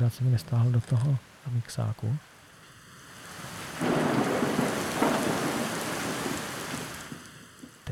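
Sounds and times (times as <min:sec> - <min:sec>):
speech: 0:00.0 - 0:02.3
steady rain: 0:00.0 - 0:07.9
deep rumble of thunder: 0:03.8 - 0:07.2.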